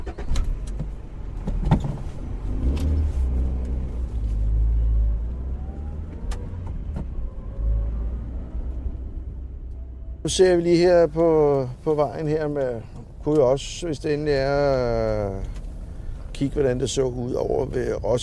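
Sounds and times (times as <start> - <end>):
faint clicks and rattles from inside the car cabin: 0.0 - 4.5, 12.0 - 18.2
car engine rumble: 0.0 - 18.2
road noise: 0.0 - 18.2
speech: 10.3 - 15.6, 16.4 - 18.2.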